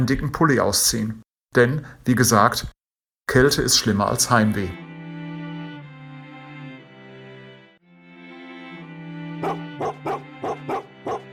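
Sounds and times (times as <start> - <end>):
speech: 0.0 - 4.9
huskies whining and howling in the cold: 9.4 - 11.3.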